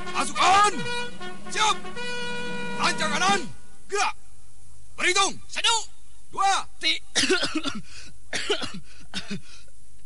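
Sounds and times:
speech: 0.2 - 2.2, 2.8 - 4.2, 5.0 - 9.5
harsh coughing from person standing in drill formation: 7.1 - 9.5.

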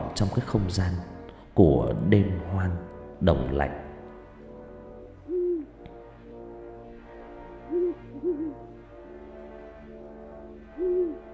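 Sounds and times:
speech: 0.2 - 3.8
owl hooting at night: 5.2 - 5.9, 7.5 - 9.0, 10.7 - 11.3.

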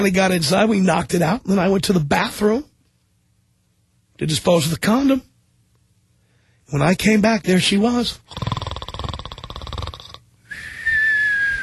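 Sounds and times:
speech: 0.0 - 2.7, 4.2 - 5.3, 6.7 - 8.6
voice imitating snoring: 8.2 - 10.2
steady high whistling tone: 10.5 - 11.6.

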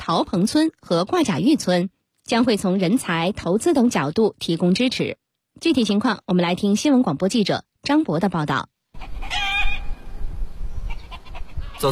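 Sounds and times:
speech: 0.0 - 9.4
hens clucking in a farmyard in a mountain village: 10.9 - 11.9.

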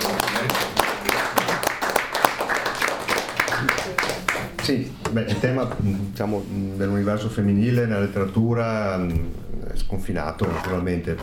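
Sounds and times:
audience applause at a literary event: 0.0 - 4.6
speech: 4.7 - 11.2.

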